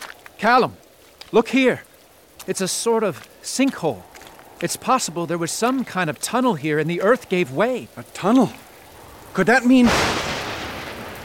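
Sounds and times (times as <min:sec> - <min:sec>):
steady rain: 0:00.0 - 0:11.2
speech: 0:00.4 - 0:08.6, 0:09.3 - 0:10.2
rolling crash of thunder in a storm: 0:08.6 - 0:11.2.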